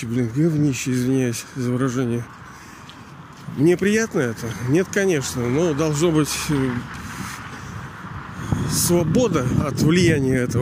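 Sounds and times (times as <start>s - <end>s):
speech: 0.0s - 2.4s, 3.5s - 7.0s, 8.7s - 10.5s
rumbling wind buffeting the microphone outdoors: 6.4s - 10.5s.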